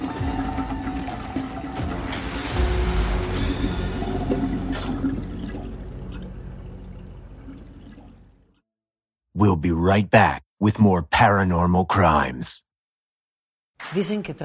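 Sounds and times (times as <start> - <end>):
bathtub water gurgling down a drain pipe: 0.0 - 2.4, 3.4 - 8.6
speech: 9.4 - 12.6, 13.8 - 14.4.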